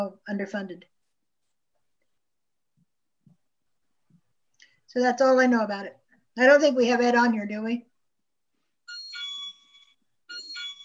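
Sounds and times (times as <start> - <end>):
speech: 0.0 - 1.0, 4.9 - 7.9
bright electronic-sounding bell ringing: 8.8 - 10.8.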